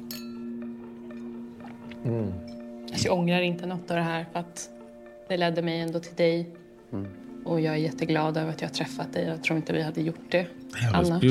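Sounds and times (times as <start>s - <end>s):
glass clinking during a toast: 0.0s - 1.4s, 2.4s - 2.8s
speech: 2.0s - 11.2s.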